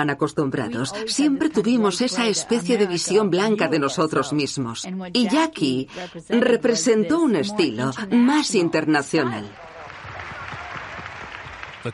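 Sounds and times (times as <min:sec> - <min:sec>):
speech: 0:00.0 - 0:09.7
crowd applause in Texas: 0:09.3 - 0:11.9.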